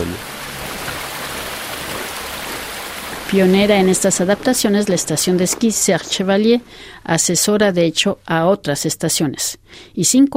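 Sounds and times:
mountain river water flowing: 0.0 - 7.0
speech: 3.3 - 10.3.

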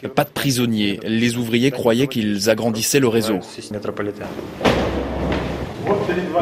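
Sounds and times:
speech: 0.0 - 5.1
heavy metal bunker door to a metro station slamming shut: 4.5 - 6.0.

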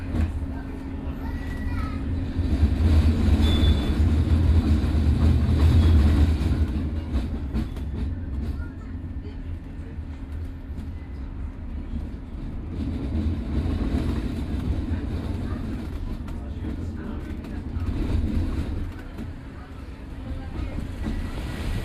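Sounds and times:
tram cars rolling along rails: 0.0 - 21.8
high tram squeal: 3.4 - 4.0.

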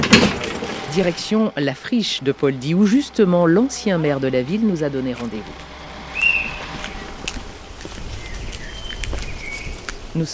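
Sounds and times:
steady outdoor hum: 0.0 - 10.3
speech: 1.0 - 5.7, 10.2 - 10.3
bird calls and chirps at an industrial wasteland in Kladno: 6.1 - 7.2, 8.0 - 10.0.

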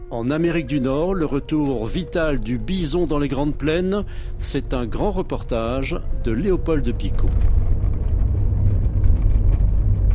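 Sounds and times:
speech: 0.1 - 7.6
small car driving across the yellowed Alberta plains in strong gusty wind: 6.7 - 10.1.

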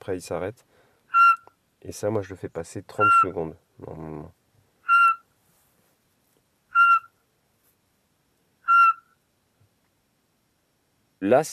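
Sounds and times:
speech: 0.0 - 0.8, 1.8 - 4.4, 11.2 - 11.5
recorded Eurasian pygmy owl call played from a device: 1.1 - 1.6, 2.9 - 3.4, 4.8 - 5.3, 6.7 - 7.2, 8.6 - 9.3.

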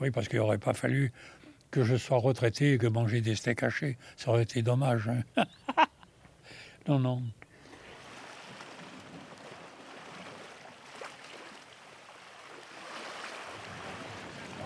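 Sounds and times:
speech: 0.0 - 5.9, 6.8 - 7.4
harbour water lapping around light boats moored to a pontoon in a port: 7.4 - 14.6.

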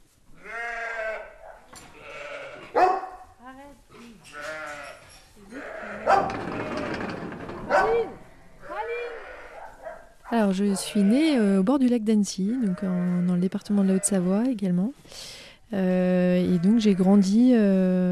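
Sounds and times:
noisy rustling: 0.0 - 11.4
herd animals bleating at feeding time on an organic farm in France: 0.4 - 2.7, 4.2 - 6.9, 8.0 - 9.6, 10.7 - 11.4, 12.5 - 14.5, 16.3 - 17.5
speech: 10.4 - 18.0.

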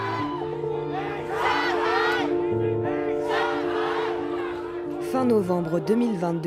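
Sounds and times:
large crowd of young people in China shouting angry slogans: 0.0 - 5.0
speech: 5.2 - 6.4.

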